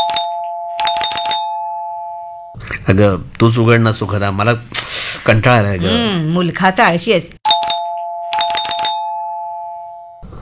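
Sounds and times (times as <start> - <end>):
electronic doorbell chiming at home: 0.0 - 2.6, 7.4 - 10.3
speech: 2.9 - 7.4.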